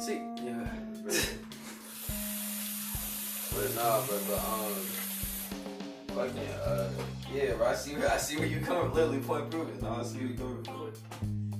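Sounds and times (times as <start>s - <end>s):
speech: 0.0s - 1.3s, 3.6s - 5.0s, 6.2s - 11.4s
water running from a tap while dishes are washed: 1.6s - 7.5s.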